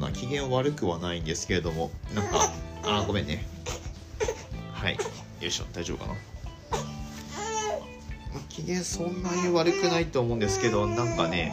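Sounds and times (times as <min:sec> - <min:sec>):
speech: 0:00.3 - 0:03.6, 0:04.8 - 0:06.3, 0:08.6 - 0:11.5
baby daughter held in arms fussing and whimpering: 0:01.9 - 0:05.5, 0:06.1 - 0:11.5.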